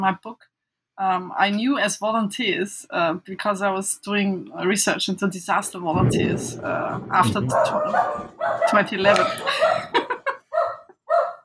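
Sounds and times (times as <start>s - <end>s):
speech: 0.0s - 9.8s
dogs barking during a sudden thunderstorm: 7.5s - 9.9s, 10.5s - 11.4s
laughter: 9.1s - 10.5s.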